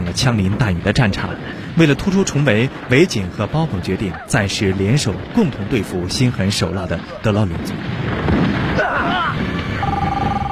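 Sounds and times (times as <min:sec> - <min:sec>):
speech: 0:00.1 - 0:09.0
mobile phone ringing with a warbling electronic ringtone: 0:09.8 - 0:10.5.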